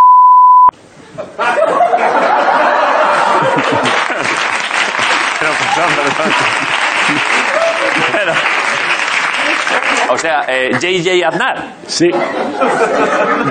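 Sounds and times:
censor beep over a spoken email address: 0.0 - 0.7
laughter: 1.0 - 11.0, 11.9 - 13.4
applause: 3.2 - 10.9
speech: 5.8 - 8.8, 10.1 - 13.4.

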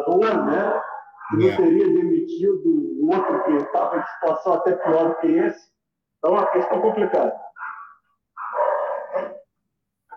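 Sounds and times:
speech: 0.1 - 7.5, 9.1 - 9.4
dog barking: 0.3 - 1.6, 3.1 - 5.5, 6.2 - 9.5.

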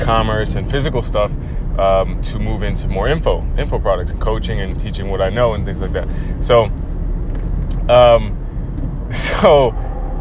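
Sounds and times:
speech: 0.0 - 6.9, 7.9 - 8.4, 9.1 - 10.0
steady low rumble of a vehicle: 0.0 - 10.1
badly worn car brakes grinding and squealing: 5.4 - 10.1.

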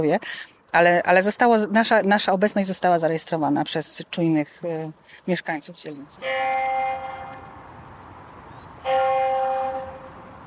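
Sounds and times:
speech: 0.0 - 6.9
church bells ringing: 6.2 - 7.7, 8.8 - 10.4.

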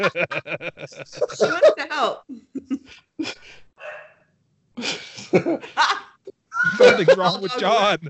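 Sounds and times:
speech: 0.0 - 3.4, 4.8 - 8.0
laughter: 0.0 - 3.5, 4.8 - 8.0
dog barking in short sharp bursts: 3.8 - 4.2.

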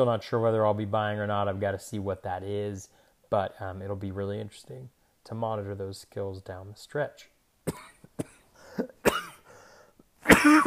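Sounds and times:
speech: 0.0 - 7.9
person coughing in short harsh bursts: 7.7 - 9.5, 10.2 - 10.6.

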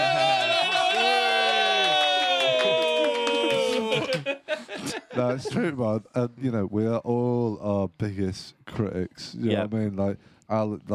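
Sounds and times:
crowd cheering: 0.0 - 4.5
clapping: 1.5 - 4.4
laughter: 2.4 - 5.8
speech: 5.2 - 10.9.

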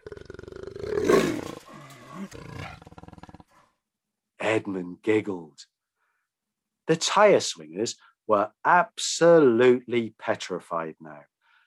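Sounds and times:
large creature with a huge mouth roaring and growling: 0.0 - 3.6
speech: 2.2 - 2.8, 4.5 - 5.7, 6.9 - 11.3.

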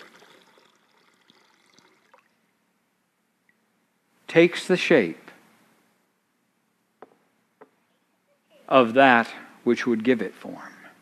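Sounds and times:
water pouring in a splashing stream: 0.0 - 2.5
speech: 4.4 - 5.2, 8.7 - 10.8.

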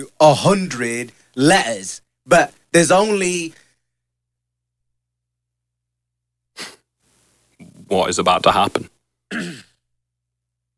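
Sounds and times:
speech: 0.0 - 3.6, 7.9 - 9.7
stifled sneeze turning into a cough: 6.6 - 6.9, 9.3 - 9.8.

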